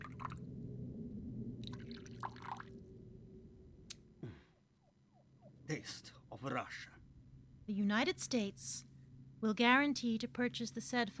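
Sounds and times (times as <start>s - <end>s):
steady low hum: 0.0s - 10.9s
Beluga vodka from Siberia pouring into a glass: 1.6s - 2.8s
speech: 5.7s - 7.0s, 7.7s - 11.1s.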